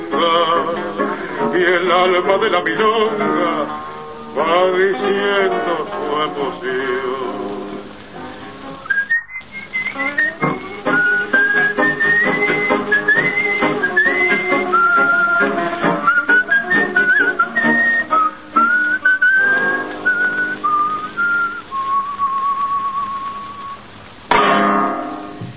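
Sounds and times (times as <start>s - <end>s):
noise burst: 0.0s - 25.5s
speech: 1.6s - 7.5s
man whistling a lilting melody: 8.8s - 23.9s.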